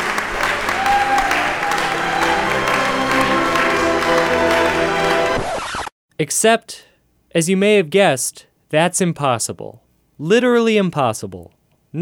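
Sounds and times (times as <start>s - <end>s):
large crowd applauding: 0.0s - 5.6s
speech: 6.2s - 11.9s.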